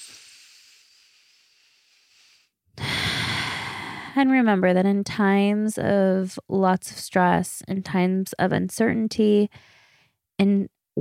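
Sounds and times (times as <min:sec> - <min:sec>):
long soft airy deep inhale: 0:00.0 - 0:04.2, 0:09.5 - 0:10.2
loud rushing exhale: 0:00.0 - 0:04.2
speech: 0:04.2 - 0:09.8, 0:10.4 - 0:10.9.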